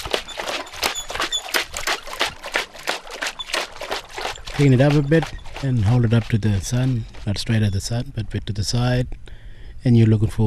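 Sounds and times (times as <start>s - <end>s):
sieve of dirt dipped and swished in water: 0.0s - 8.0s
speech: 4.6s - 9.2s, 9.8s - 10.4s.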